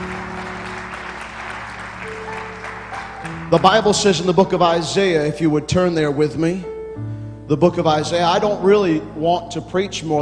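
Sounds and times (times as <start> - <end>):
crowd clapping in welcome: 0.0 - 4.4
speech: 3.5 - 10.2.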